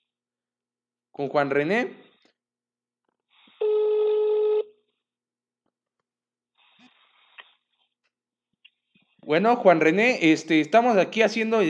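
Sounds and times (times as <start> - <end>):
speech: 1.2 - 2.0, 9.3 - 11.6
phone-line noise: 3.6 - 4.7
loud steady telephone tone: 3.6 - 4.8.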